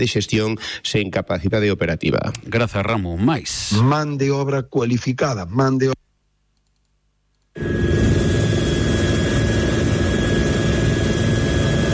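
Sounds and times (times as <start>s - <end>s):
speech: 0.0s - 6.0s, 7.6s - 8.0s
firefighting helicopter flying overhead: 7.6s - 11.9s.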